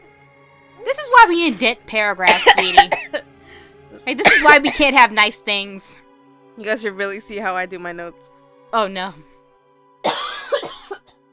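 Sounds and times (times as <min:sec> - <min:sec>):
speech: 0:00.8 - 0:03.3, 0:04.0 - 0:06.0, 0:06.6 - 0:09.3
person coughing hard and raspy: 0:02.3 - 0:03.2, 0:04.2 - 0:04.8, 0:10.0 - 0:11.2.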